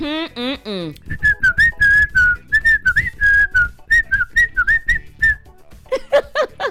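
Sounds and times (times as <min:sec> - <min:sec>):
person whistling a bright warbling melody: 0:01.0 - 0:05.5
laughter: 0:05.9 - 0:06.6.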